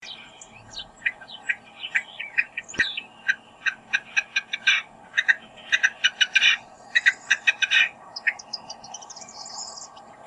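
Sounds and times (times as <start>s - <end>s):
bird singing: 0.0s - 10.2s.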